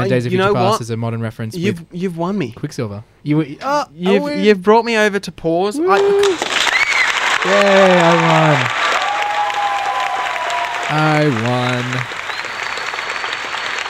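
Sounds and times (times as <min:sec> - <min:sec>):
speech: 0:00.0 - 0:06.6, 0:07.4 - 0:08.8, 0:10.9 - 0:12.2
crowd applause: 0:06.0 - 0:13.8.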